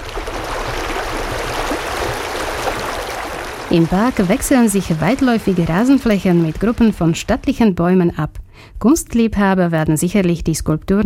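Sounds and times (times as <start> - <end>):
brook flowing with rushing and bubbling water: 0.0 - 7.4
speech: 3.7 - 11.0.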